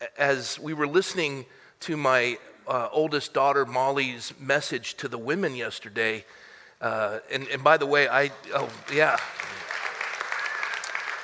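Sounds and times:
speech: 0.1 - 9.6
audience of women applauding: 8.4 - 11.2.

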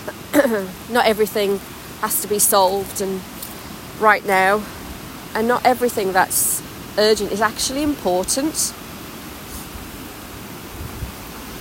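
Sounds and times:
water rushing through a narrow stretch of river: 0.0 - 11.5
speech: 0.4 - 3.3, 4.0 - 8.8.

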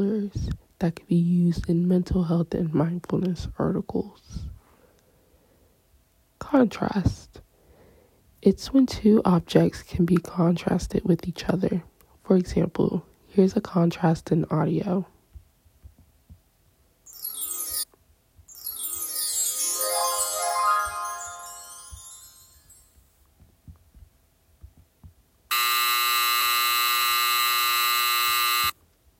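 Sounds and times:
speech: 0.0 - 4.5, 6.4 - 7.4, 8.4 - 15.1
ringing chime: 17.1 - 23.2
loud flat buzzer: 25.5 - 28.8.

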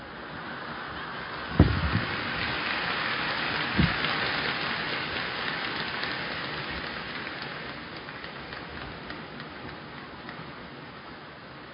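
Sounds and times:
heavy rain pouring down: 0.1 - 11.7
low thumps: 1.6 - 2.1.

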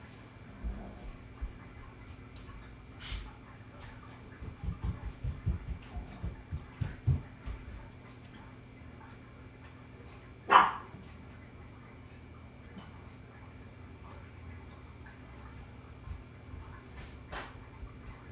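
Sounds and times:
faint steady hum: 0.0 - 18.3
dog barking: 10.5 - 10.9.

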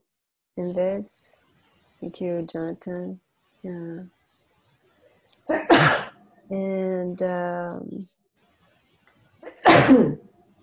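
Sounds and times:
speech: 0.6 - 1.2, 2.0 - 4.2, 5.5 - 8.2, 9.7 - 10.2
loud sneeze: 5.5 - 6.1, 9.4 - 10.2.

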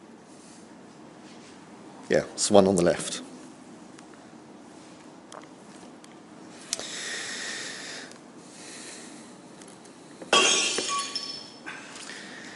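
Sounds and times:
speech: 2.1 - 3.3
glass smashing and shattering: 10.3 - 11.6
tinkling glass shards ringing and scattering: 10.3 - 11.6.

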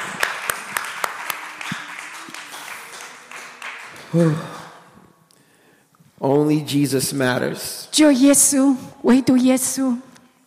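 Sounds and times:
audience clapping: 0.0 - 4.8
speech: 4.1 - 4.6, 6.2 - 10.1.

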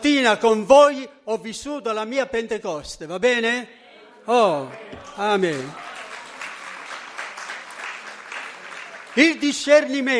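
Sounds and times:
speech: 0.2 - 5.9, 9.2 - 10.1
audience clapping: 4.6 - 10.1.

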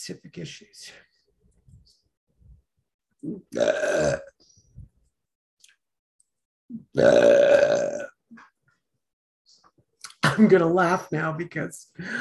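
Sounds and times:
speech: 0.0 - 1.1, 3.2 - 4.3, 6.7 - 8.4, 10.2 - 12.1
loud burps: 3.2 - 4.4, 6.7 - 8.3.

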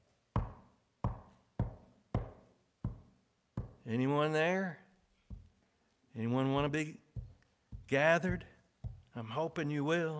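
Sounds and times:
knocking on a wooden door: 0.4 - 3.8, 6.6 - 9.1
speech: 3.9 - 4.8, 6.2 - 7.0, 7.9 - 8.5, 9.2 - 10.1.

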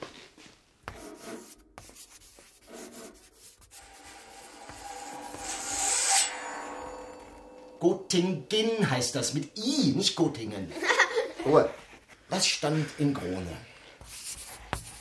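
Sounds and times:
chalk scratching across a school blackboard: 0.9 - 7.0, 14.0 - 14.9
speech: 7.8 - 13.7.

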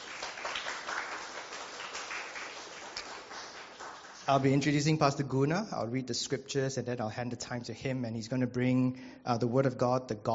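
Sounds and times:
audience applauding a guest speaker: 0.0 - 4.6
speech: 4.3 - 10.3.

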